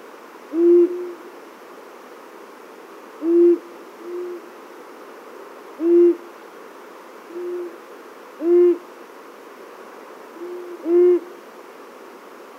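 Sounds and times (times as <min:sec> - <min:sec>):
steady background hiss: 0:00.0 - 0:12.5
long-eared owl giving low soft hoots: 0:00.5 - 0:01.3, 0:03.2 - 0:04.5, 0:05.8 - 0:06.3, 0:07.3 - 0:07.8, 0:08.4 - 0:08.9, 0:10.4 - 0:11.3.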